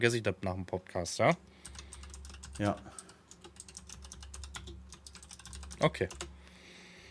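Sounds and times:
speech: 0:00.0 - 0:01.8, 0:02.6 - 0:03.0, 0:05.8 - 0:06.2
typing on a computer keyboard: 0:01.6 - 0:06.4.

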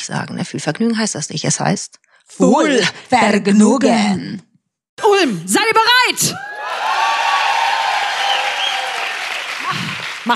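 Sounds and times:
speech: 0:00.0 - 0:06.5
faint cheers and whistles: 0:06.4 - 0:10.2
live audience applauding: 0:06.4 - 0:10.3.

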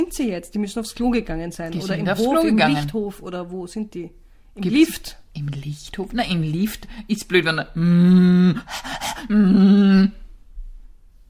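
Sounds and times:
speech: 0:00.0 - 0:10.2
voice imitating panting: 0:07.8 - 0:10.1.

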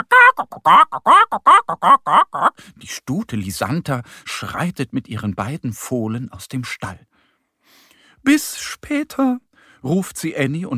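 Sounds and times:
excited hens clucking on a farm: 0:00.0 - 0:02.5
speech: 0:00.6 - 0:01.2, 0:02.9 - 0:07.1, 0:08.2 - 0:10.7.

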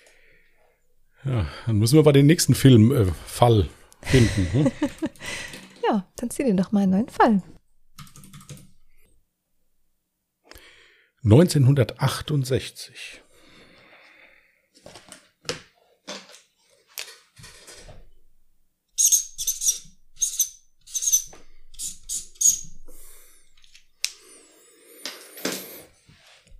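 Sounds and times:
speech: 0:01.2 - 0:07.6, 0:11.2 - 0:13.2
laughter: 0:04.1 - 0:05.5
felt-tip marker squeaking across a surface: 0:19.0 - 0:23.1.

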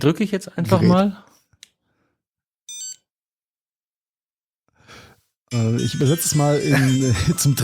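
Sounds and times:
speech: 0:00.0 - 0:01.3, 0:05.5 - 0:07.6
short loud warbling electronic phone ring: 0:02.7 - 0:03.0, 0:05.5 - 0:07.6.

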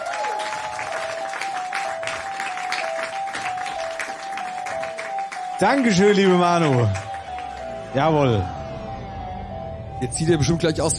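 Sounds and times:
audience applause: 0:00.0 - 0:07.8
speech: 0:05.6 - 0:07.1, 0:07.9 - 0:08.6, 0:10.0 - 0:10.9.

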